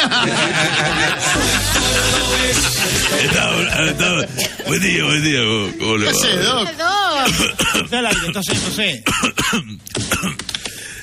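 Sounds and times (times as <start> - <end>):
laughter: 0.0 - 5.2
speech: 0.0 - 10.7
loud wavering vocal sounds: 1.2 - 6.6
person coughing and clearing throat: 7.2 - 8.4, 9.0 - 10.5.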